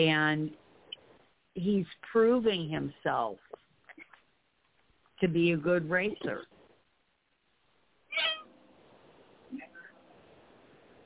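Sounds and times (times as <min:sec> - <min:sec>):
speech: 0:00.0 - 0:00.6, 0:01.6 - 0:03.6, 0:05.2 - 0:06.5
quiet hum: 0:00.0 - 0:11.0
cat meowing: 0:08.1 - 0:08.5.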